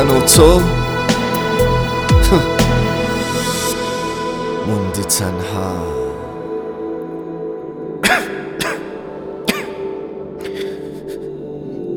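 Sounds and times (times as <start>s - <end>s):
speech: 0.0s - 1.2s, 2.3s - 2.6s, 4.7s - 6.0s
steady low musical hum: 0.0s - 8.0s
person coughing: 8.0s - 9.9s.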